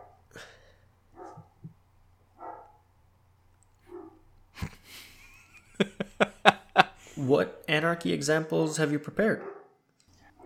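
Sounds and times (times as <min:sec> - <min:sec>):
dog barking: 0:00.0 - 0:00.2, 0:01.2 - 0:01.5, 0:02.4 - 0:02.9, 0:03.9 - 0:04.3, 0:09.4 - 0:09.8
laughter: 0:04.6 - 0:07.4
speech: 0:07.2 - 0:09.5.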